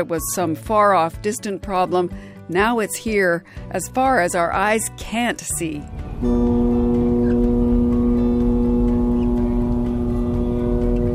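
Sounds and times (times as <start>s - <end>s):
speech: 0.0s - 6.9s
low rumble of ship engine: 5.8s - 11.1s
ship's foghorn blaring a deep tone off the West Coast: 5.9s - 11.1s.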